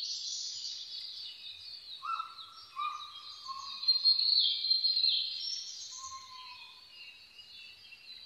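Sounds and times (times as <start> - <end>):
konohazuku scops owl calling: 2.0 - 3.8, 6.0 - 6.8.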